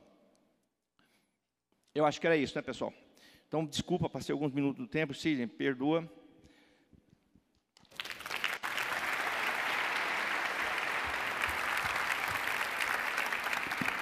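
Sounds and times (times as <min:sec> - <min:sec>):
speech: 0:02.0 - 0:06.2
audience applause: 0:07.9 - 0:14.0.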